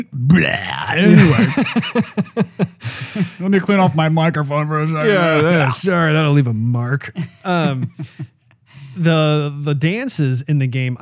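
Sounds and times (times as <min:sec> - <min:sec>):
speech: 0:00.0 - 0:08.3, 0:09.0 - 0:11.0
long loud rumbling croaky burp: 0:00.3 - 0:01.7
laughter: 0:00.9 - 0:05.8, 0:07.2 - 0:08.3.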